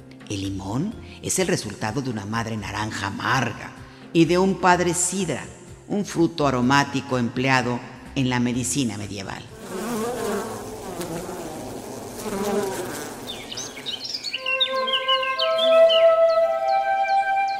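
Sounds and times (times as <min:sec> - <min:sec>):
speech: 0:00.3 - 0:09.6
bees buzzing: 0:09.6 - 0:16.9
bird chirps: 0:13.3 - 0:17.5
sustained high tones: 0:14.3 - 0:17.5.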